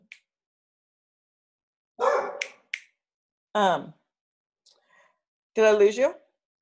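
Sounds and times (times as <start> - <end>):
dog barking: 2.0 - 2.6
speech: 3.6 - 4.0, 5.6 - 6.2.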